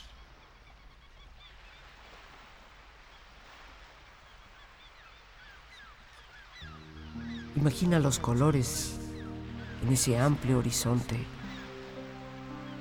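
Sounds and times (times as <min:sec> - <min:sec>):
soft bird calls: 0:00.0 - 0:12.8
surf washing along a shoreline: 0:00.0 - 0:12.8
speech: 0:07.6 - 0:09.0, 0:09.8 - 0:11.4.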